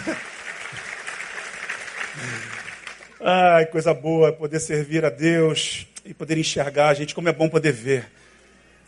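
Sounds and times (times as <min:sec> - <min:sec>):
crowd applauding: 0:00.0 - 0:03.2
speech: 0:03.2 - 0:08.2.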